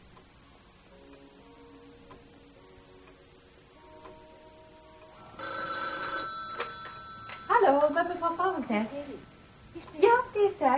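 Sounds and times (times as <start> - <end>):
telephone bell ringing: 5.4 - 8.0
speech: 7.8 - 9.3, 10.4 - 10.7.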